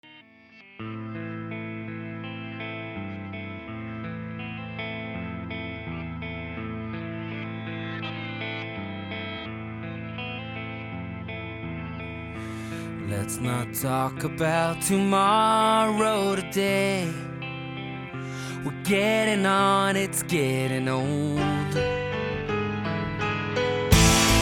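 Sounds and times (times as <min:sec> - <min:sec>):
speech: 0:13.2 - 0:17.3, 0:18.9 - 0:22.0
loud sustained distorted chords: 0:21.7 - 0:24.4
steady low bass line: 0:21.8 - 0:24.4.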